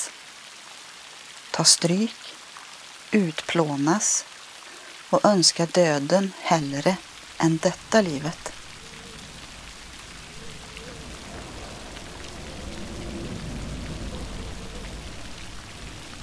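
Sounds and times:
rain lashing: 0:00.0 - 0:16.2
speech: 0:01.6 - 0:02.4, 0:03.1 - 0:04.3, 0:05.1 - 0:08.6
howling wind: 0:07.0 - 0:16.2.

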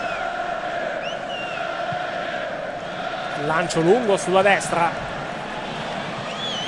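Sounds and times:
faint whistles in a football stadium: 0:00.0 - 0:00.3, 0:01.0 - 0:01.7, 0:06.2 - 0:06.6
Swedish football fans chanting in a stadium during a match against Italy: 0:00.0 - 0:06.6
speech: 0:03.4 - 0:05.1.

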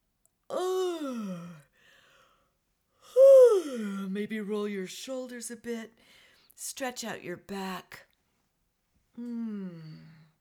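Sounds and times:
person yawning while stretching before singing: 0:00.5 - 0:01.6, 0:03.1 - 0:03.8, 0:09.2 - 0:10.2
short breath: 0:01.7 - 0:02.5, 0:06.0 - 0:06.5
speech: 0:04.2 - 0:08.1, 0:09.2 - 0:10.2.

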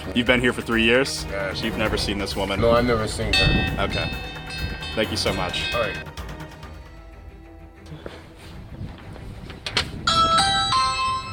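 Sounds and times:
speech: 0:00.1 - 0:06.2
video doorbell chime with bright stepped melodic tones: 0:03.3 - 0:06.1, 0:10.1 - 0:11.3
outdoor noise: 0:07.6 - 0:11.3.

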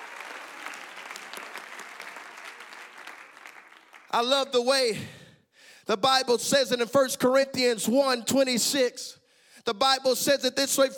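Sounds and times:
audience clapping hands: 0:00.0 - 0:04.7
speech: 0:04.1 - 0:05.2, 0:05.9 - 0:10.9.

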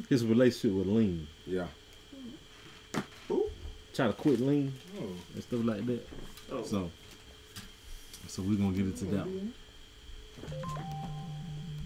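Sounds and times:
low pulsing buzz: 0:00.0 - 0:11.8
speech: 0:00.1 - 0:01.8, 0:04.0 - 0:07.1, 0:08.3 - 0:09.6, 0:10.4 - 0:11.2
electronic mobile phone ringtone: 0:10.5 - 0:11.8.

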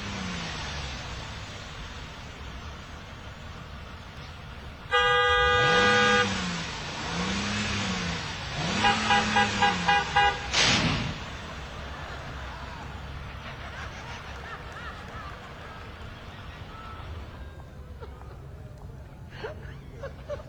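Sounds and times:
low engine rumble: 0:00.0 - 0:20.4
traffic: 0:00.0 - 0:20.4
car horn honking: 0:04.8 - 0:07.4, 0:08.2 - 0:11.8
laughter: 0:11.1 - 0:20.4.

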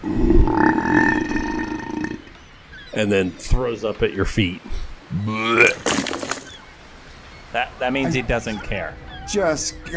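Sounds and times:
hobgoblin long loud gurgling burp: 0:00.0 - 0:02.3
speech: 0:03.0 - 0:05.7, 0:07.6 - 0:09.9.

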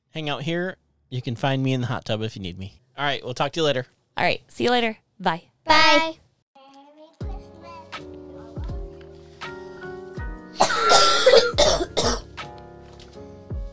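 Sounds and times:
speech: 0:00.2 - 0:06.2
harsh coughing: 0:10.6 - 0:12.3.

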